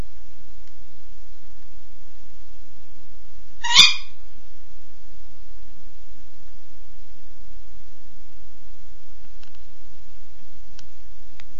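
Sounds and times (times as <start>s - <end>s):
faint low hum: 0.0s - 11.5s
tawny owl giving a territorial rasping bark: 3.6s - 4.2s.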